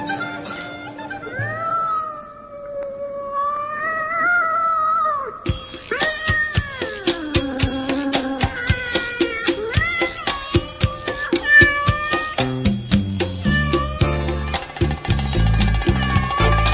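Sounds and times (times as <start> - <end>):
long wavering cat meows: 1.3 - 5.3, 5.9 - 16.7
cat yowling caterwauls: 1.3 - 12.6, 13.3 - 14.5, 15.1 - 16.7
lively rhythmic band with sharp percussion: 5.5 - 16.7.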